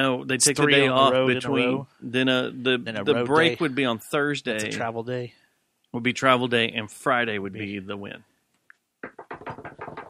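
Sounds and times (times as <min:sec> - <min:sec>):
speech: 0:00.0 - 0:08.3
knocking on wood: 0:09.0 - 0:10.0.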